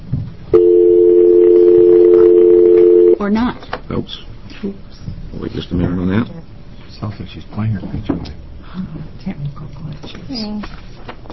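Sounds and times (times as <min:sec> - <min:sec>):
telephone dial tone on a conference call line: 0:00.6 - 0:03.2
speech: 0:03.2 - 0:11.3.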